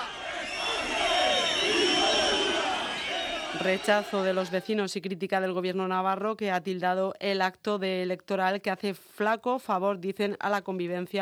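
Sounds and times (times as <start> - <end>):
large crowd booing and jeering at protest: 0.0 - 4.7
speech: 3.6 - 11.1.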